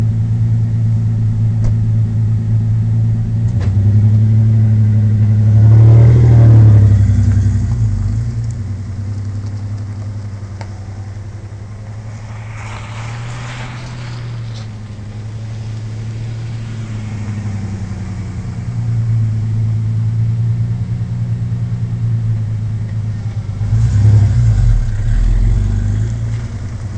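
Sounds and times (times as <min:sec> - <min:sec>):
Ford Ranger engine with Flowmaster exhaust and Magna catalytic converter in a parking lot: 0:00.0 - 0:26.9.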